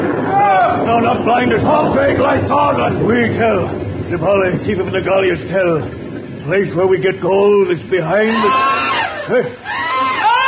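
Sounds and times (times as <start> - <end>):
speech: 1.0 - 9.9
people screaming in panic in a village during a thunderstorm: 8.2 - 10.4.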